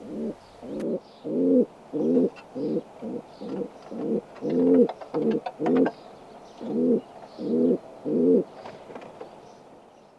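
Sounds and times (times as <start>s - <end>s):
feral pigeon cooing: 0.0s - 6.0s, 6.6s - 8.5s.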